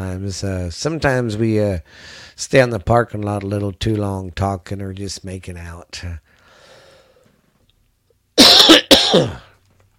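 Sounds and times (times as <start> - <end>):
speech: 0.1 - 6.3, 9.1 - 9.4
person coughing harshly: 8.4 - 9.6
raspy throat clearing: 8.4 - 9.6.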